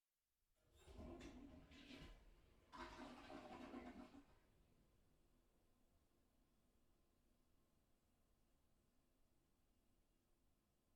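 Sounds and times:
toilet flushing through closed door: 0.8 - 4.4.

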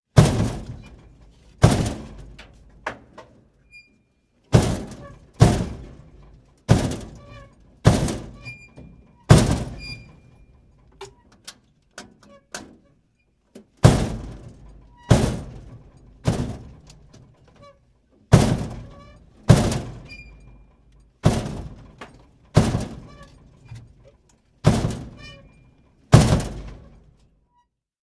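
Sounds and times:
dumpster door slamming: 0.2 - 3.1, 4.5 - 10.4, 13.8 - 17.3, 18.3 - 24.0, 24.6 - 27.2.

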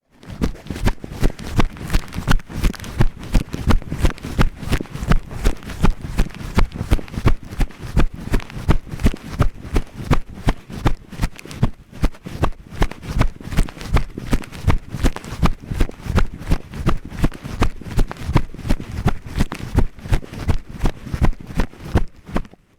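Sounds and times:
person running with recorder in pocket: 0.1 - 22.7.

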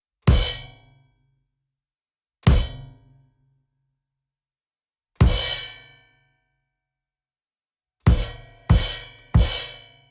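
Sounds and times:
cymbal and kick drum: 0.3 - 0.7, 2.5 - 3.0, 5.2 - 5.8, 8.1 - 9.9.

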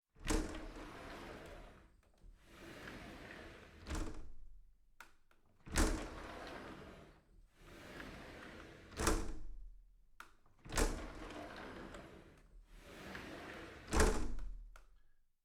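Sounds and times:
window sliding: 0.3 - 4.3, 5.7 - 9.4, 10.7 - 14.4.

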